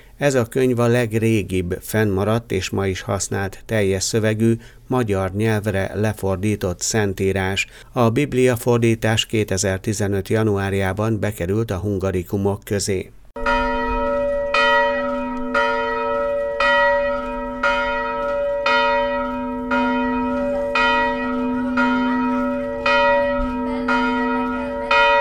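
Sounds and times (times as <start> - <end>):
speech: 0.2 - 13.2
church bells ringing: 13.4 - 25.1.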